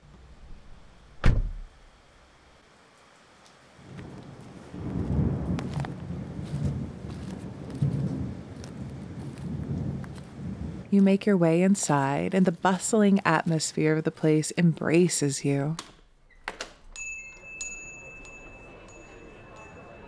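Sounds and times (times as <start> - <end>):
steady rain pattering: 2.9 - 14.2
deeper rumbling swell of heavier rainfall or thunder: 3.1 - 11.0
speech: 10.9 - 16.0.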